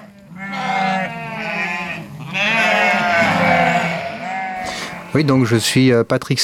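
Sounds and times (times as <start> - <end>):
Landes de Bretagne sheep bleating on a farm in Brittany, France: 0.0 - 5.9
speech: 5.2 - 6.4.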